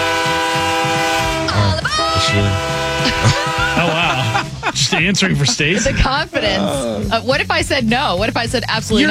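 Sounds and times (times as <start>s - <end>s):
loud sustained train horn blaring: 0.0s - 4.6s
speech: 2.3s - 4.0s, 4.7s - 9.0s
laughter: 3.0s - 7.2s.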